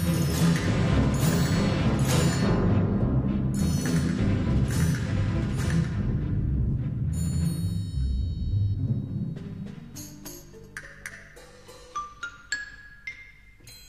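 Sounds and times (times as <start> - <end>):
orchestral percussion section drums: 0.0 - 7.8, 8.5 - 10.6.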